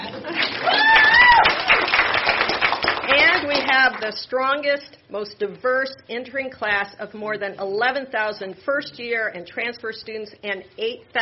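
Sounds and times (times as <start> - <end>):
audience cheering and applauding: 0.3 - 3.6
rising whoop or whistle from the audience: 0.6 - 1.6
speech: 3.8 - 11.1.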